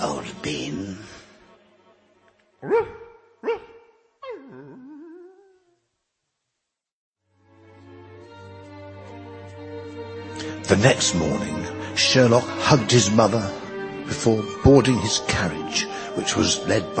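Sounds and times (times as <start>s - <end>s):
soft sustained music: 0.0s - 3.4s, 7.2s - 16.9s
speech: 2.6s - 3.6s, 10.7s - 16.9s
dog barking: 2.6s - 4.0s
dog whining: 2.6s - 5.8s.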